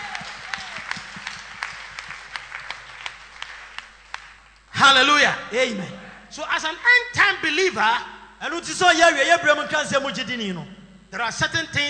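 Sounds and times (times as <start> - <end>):
crowd clapping in sustained applause: 0.0 - 4.5
speech: 4.8 - 11.8.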